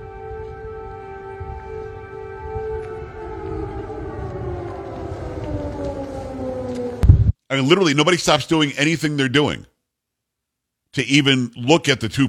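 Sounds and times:
missile warning air-raid siren wailing: 0.0 - 7.4
speech: 7.5 - 9.7, 10.9 - 12.2.

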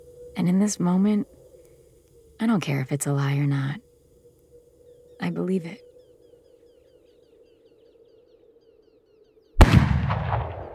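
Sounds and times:
speech: 0.4 - 1.4, 2.4 - 3.8, 5.2 - 5.9
gunshot with rumbling echo fired outdoors: 9.6 - 10.7.

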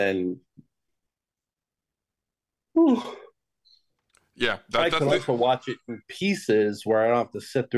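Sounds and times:
speech: 0.0 - 0.7, 2.8 - 3.2, 4.4 - 7.7
person yawning: 2.8 - 3.3.

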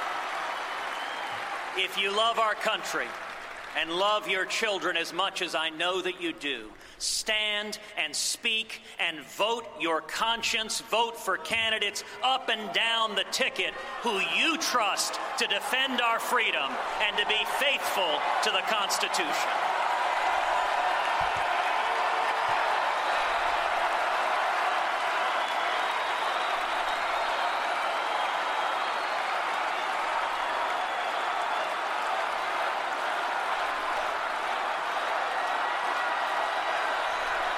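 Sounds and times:
large convention hall crowd shouting and jeering in displeasure: 0.0 - 1.7, 13.8 - 37.5
speech: 1.8 - 19.7.

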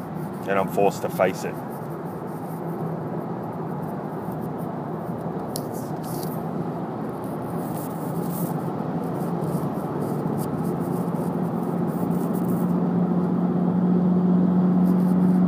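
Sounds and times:
steady loud road traffic roar: 0.0 - 15.4
speech: 0.5 - 1.7.

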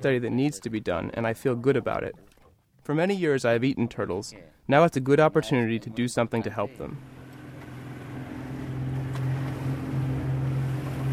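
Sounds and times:
speech: 0.0 - 2.3, 2.9 - 7.2
rushing water: 0.0 - 2.6, 7.0 - 11.1
boat engine droning at sea: 7.0 - 11.1.

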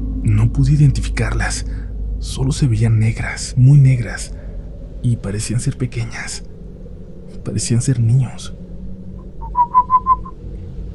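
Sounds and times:
low rumble: 0.0 - 10.9
speech: 0.4 - 4.4, 5.0 - 6.5, 7.4 - 8.6
soft bird-like human whistle used to speak quietly: 9.4 - 10.4.

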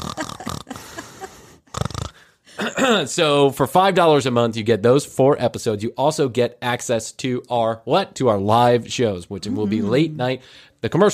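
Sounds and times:
person imitating snoring into the microphone: 0.0 - 0.8, 1.7 - 2.2
speech: 2.8 - 11.1.

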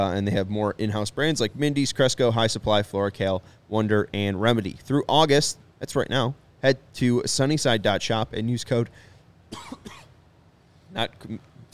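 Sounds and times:
speech: 0.0 - 10.0, 10.9 - 11.7
harsh coughs with throat clearing: 9.5 - 10.2.

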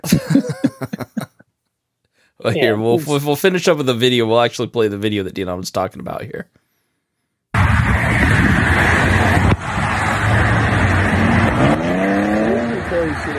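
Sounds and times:
laughter: 0.0 - 1.4
speech: 2.4 - 6.6
steady roar of interstate traffic: 7.6 - 13.3
vehicle engine whining upward in pitch as it passes: 7.6 - 13.3.

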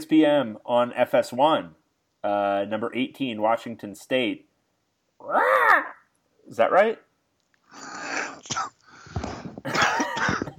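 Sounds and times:
speech: 0.0 - 4.5, 5.2 - 7.0
harsh raspy wheezy coughing fits: 9.6 - 10.5.

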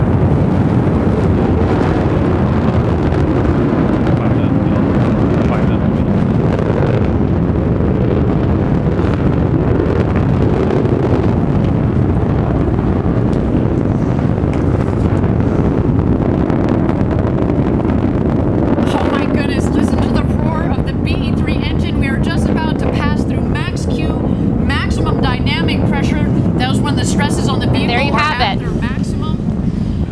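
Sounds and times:
rocket engine roaring during liftoff: 0.0 - 30.1
indistinct voices: 18.8 - 29.5.

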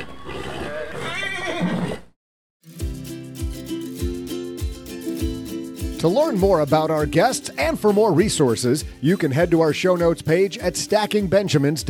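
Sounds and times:
horse neighing in a quivering whinny: 0.0 - 2.1
rhythmic music with steady thumping beats: 2.6 - 11.8
speech: 6.0 - 11.8.

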